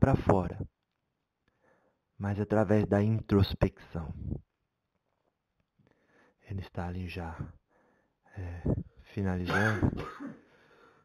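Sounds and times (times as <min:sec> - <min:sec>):
speech: 0:00.1 - 0:00.6, 0:02.2 - 0:04.4, 0:06.5 - 0:07.6, 0:08.4 - 0:10.4
medium clearing throat during a recording session: 0:09.5 - 0:10.4
medium coughing during a recording session: 0:09.5 - 0:10.5.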